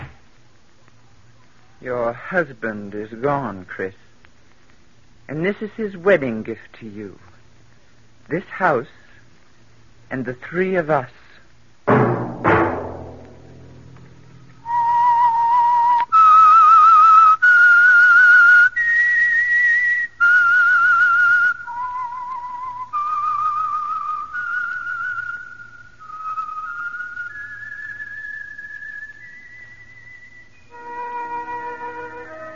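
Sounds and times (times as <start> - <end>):
speech: 2.3 - 4.1, 5.3 - 7.3, 8.3 - 9.0, 10.1 - 11.2
short opening musical hit: 11.9 - 14.4
whistled signature theme tune of a radio program: 14.6 - 32.5.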